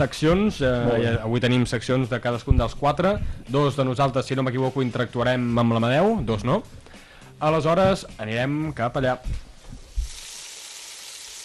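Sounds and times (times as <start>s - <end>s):
soft low thumps: 0.0s - 3.6s, 6.1s - 7.0s, 9.1s - 10.2s
speech: 0.0s - 9.5s
food frying in a deep fryer: 9.8s - 11.4s.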